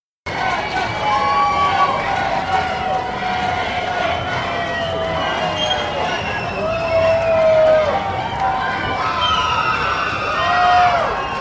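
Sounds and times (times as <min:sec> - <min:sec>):
rowdy crowd whooping and hollering: 0:00.3 - 0:11.4.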